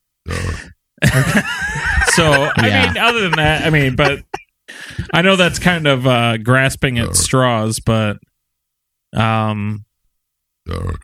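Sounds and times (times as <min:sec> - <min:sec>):
loud deep guttural burps: 0:00.2 - 0:00.8, 0:10.6 - 0:11.0
speech: 0:00.6 - 0:01.6, 0:02.2 - 0:04.3, 0:05.0 - 0:08.3, 0:09.1 - 0:09.9, 0:10.7 - 0:11.0
laughter: 0:01.0 - 0:05.8.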